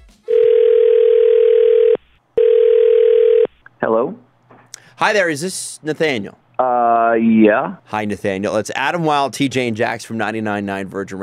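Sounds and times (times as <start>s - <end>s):
telephone dial tone of outgoing call: 0.3s - 3.5s
speech: 5.0s - 11.2s.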